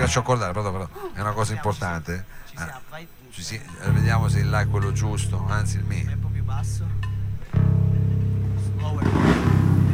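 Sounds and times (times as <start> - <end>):
speech: 0.1 - 7.6, 8.8 - 9.5
motorcycle engine idling and revving: 7.7 - 9.9.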